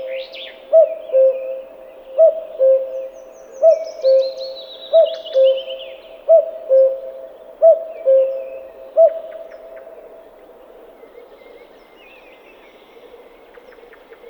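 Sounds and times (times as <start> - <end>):
common cuckoo calling: 0.0 - 9.6.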